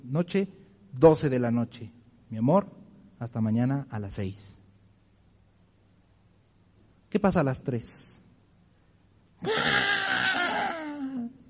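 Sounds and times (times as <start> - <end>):
speech: 0.0 - 4.6, 7.1 - 8.2, 9.4 - 10.0
voice imitating a baby girl crying: 9.4 - 11.4.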